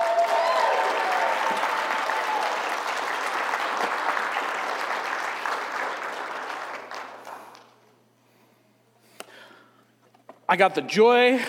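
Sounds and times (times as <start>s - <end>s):
large audience applause: 0.0s - 7.8s
speech: 10.5s - 11.4s.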